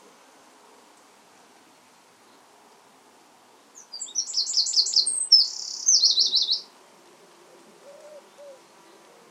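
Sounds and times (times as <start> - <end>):
faint background noise: 0.0 - 9.2
Eurasian wren Troglodytes troglodytes song: 3.6 - 6.8, 7.8 - 9.2.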